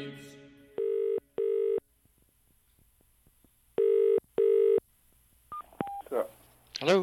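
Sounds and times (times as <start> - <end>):
telephone line buzzing tone: 0.8 - 1.8, 3.8 - 4.8
speech: 6.8 - 7.0.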